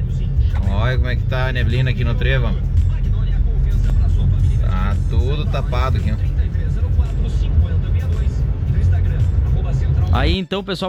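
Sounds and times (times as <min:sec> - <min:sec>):
dense road traffic at a highway interchange: 0:00.0 - 0:10.4
speech: 0:00.9 - 0:02.7, 0:05.1 - 0:06.4, 0:10.1 - 0:10.8.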